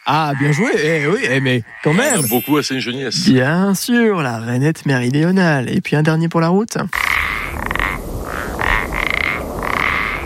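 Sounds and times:
common parsley frog croaking: 0.0 - 3.4, 6.9 - 10.2
speech: 0.1 - 7.2.

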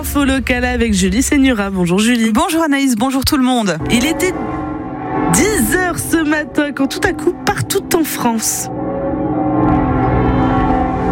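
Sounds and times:
speech: 0.0 - 4.6, 5.3 - 8.8
cathedral bell of Metz ringing: 3.8 - 11.1.

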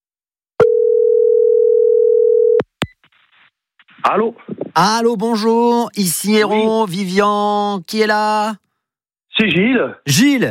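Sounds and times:
telephone ring tone: 0.6 - 2.6
speech: 4.1 - 8.6, 9.4 - 10.4.

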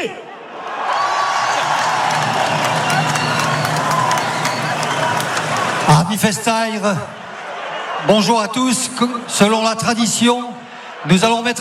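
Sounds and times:
speech: 0.0 - 0.2, 5.9 - 7.2, 8.0 - 11.6
crowd cheering and applauding as an ovation at a civic ceremony in Bayonne: 0.6 - 10.0
higher whoops and whistles from the crowd: 2.1 - 5.4.

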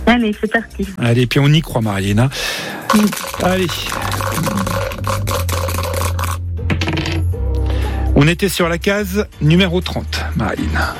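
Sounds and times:
speech: 0.1 - 4.6, 8.2 - 10.9
dice clattering and tumbling across a hard surface: 2.9 - 7.2.

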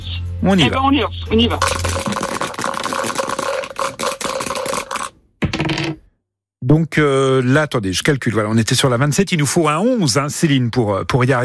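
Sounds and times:
speech: 0.4 - 2.1, 6.7 - 11.4
dice rattling: 1.6 - 6.0.

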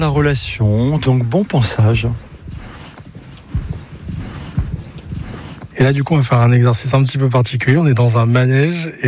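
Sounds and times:
speech: 0.0 - 2.3, 5.8 - 9.0
horse hooves clopping at a slow walking pace: 0.0 - 7.0.

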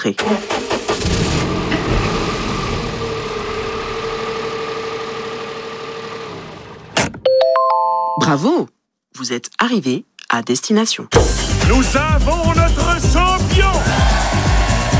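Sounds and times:
speech: 0.0 - 1.2, 8.2 - 14.6
car engine cranking and starting: 0.0 - 7.2.

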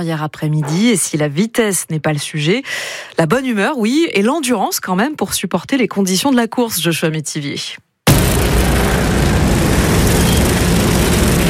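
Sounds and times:
speech: 0.0 - 8.6
several small lawn tractor engines racing: 8.7 - 11.4.

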